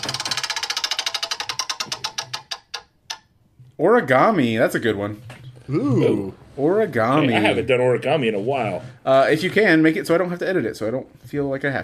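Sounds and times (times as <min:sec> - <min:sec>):
spinning prize wheel's pointer clicking against its pegs: 0:00.0 - 0:03.3
speech: 0:03.8 - 0:11.8.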